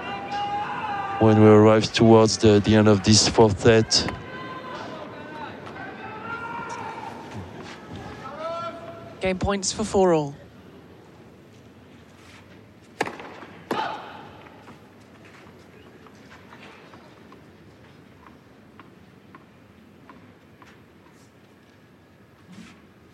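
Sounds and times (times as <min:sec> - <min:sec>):
speech: 0:01.2 - 0:04.2, 0:09.2 - 0:10.4
tennis racket striking ball in a professional match: 0:13.0 - 0:14.0.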